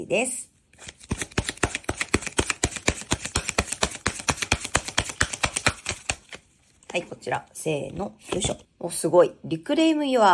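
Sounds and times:
speech: 0.0 - 1.0, 7.0 - 10.3
oracle cards being shuffled: 0.7 - 7.1.

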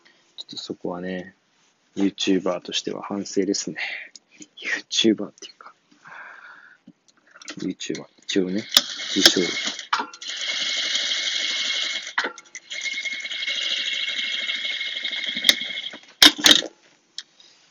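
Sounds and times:
speech: 0.4 - 1.4, 2.0 - 5.5, 7.6 - 9.8
sewing machine stitching: 8.6 - 16.5.

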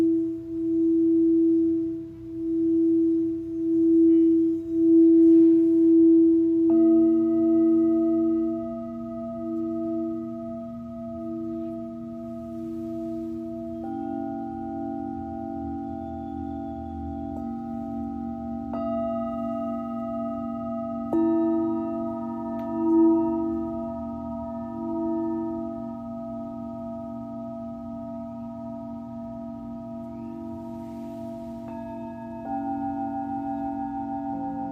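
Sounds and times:
singing bowls ringing for sound healing: 0.0 - 34.7.

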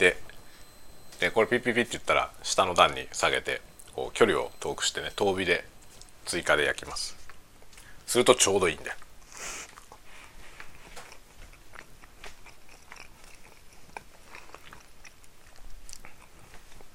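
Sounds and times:
speech: 0.0 - 0.2, 1.2 - 7.2, 8.1 - 9.6
chewing and biting of food during lunch: 9.0 - 16.9.

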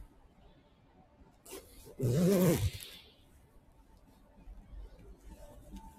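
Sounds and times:
zipper closing on clothing: 1.5 - 3.0
speech: 2.0 - 2.8.

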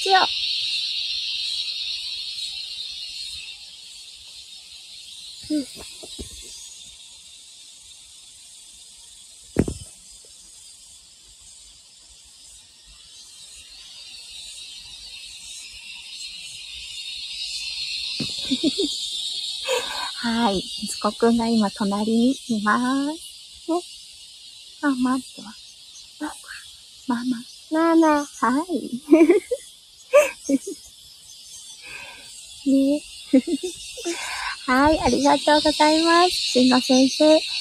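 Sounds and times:
speech: 0.0 - 0.5, 5.5 - 6.2, 20.4 - 23.9, 24.8 - 25.6, 27.1 - 29.6, 30.5 - 30.8, 32.6 - 37.5
cicadas buzzing on a summer morning in Australia: 0.0 - 37.5
sharp thump: 9.6 - 9.9
laughter: 18.2 - 18.9, 29.1 - 29.6, 30.2 - 30.8, 33.3 - 34.5.

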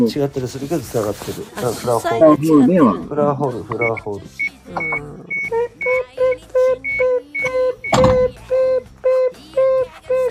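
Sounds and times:
speech: 0.0 - 6.0
vehicle warning beeper sounding short electronic beeps: 3.8 - 10.2.

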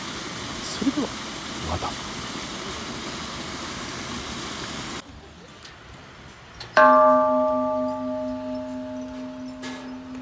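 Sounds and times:
speech: 0.8 - 2.2, 6.8 - 7.0
lucky bell struck in a cave opposite a waterfall: 6.8 - 10.2.

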